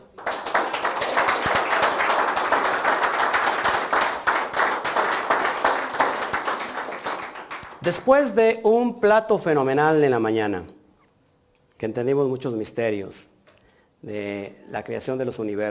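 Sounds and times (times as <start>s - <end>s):
applause from a sizable crowd: 0.0s - 8.1s
speech: 7.9s - 10.8s, 11.8s - 13.3s, 14.0s - 15.7s.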